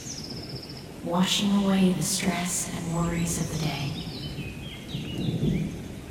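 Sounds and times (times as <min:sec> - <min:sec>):
light rain shower pattering: 0:00.0 - 0:06.0
thunder rumble: 0:00.9 - 0:06.0
speech: 0:01.0 - 0:04.2.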